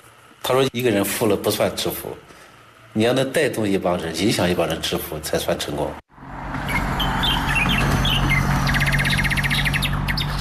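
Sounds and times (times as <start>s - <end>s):
speech: 0.5s - 2.3s, 2.9s - 6.0s
small birds chirping in trees in a village in the early morning: 6.7s - 10.3s.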